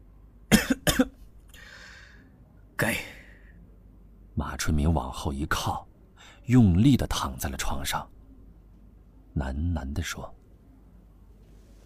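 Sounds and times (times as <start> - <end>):
heavy coughing into a thick scarf: 0.5 - 1.3
speech: 2.8 - 3.2, 4.5 - 5.9, 6.5 - 8.2, 9.4 - 10.4.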